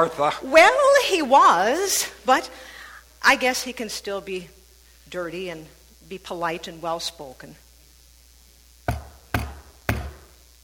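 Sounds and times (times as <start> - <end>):
speech: 0.0 - 7.6
firm knocks on a wooden door: 8.9 - 10.2.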